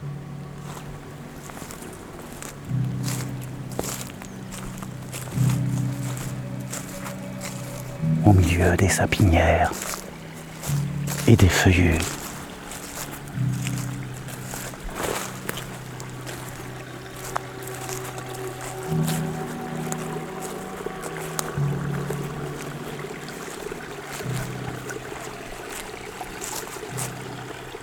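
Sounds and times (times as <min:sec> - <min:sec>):
low droning hum: 0:00.0 - 0:08.2, 0:12.2 - 0:25.6
water lapping amid fir and broadleaf woods: 0:00.0 - 0:27.8
speech: 0:08.4 - 0:09.9, 0:11.3 - 0:12.2.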